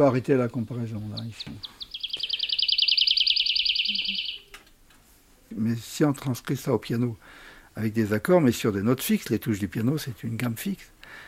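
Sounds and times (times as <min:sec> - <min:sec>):
speech: 0:00.0 - 0:01.8, 0:05.5 - 0:11.2
lark singing a rippling trill: 0:01.0 - 0:04.5.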